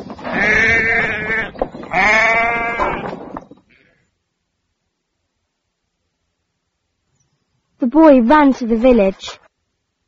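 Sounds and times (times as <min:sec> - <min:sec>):
sheep bleating: 0:00.3 - 0:03.9
speech: 0:07.9 - 0:09.4.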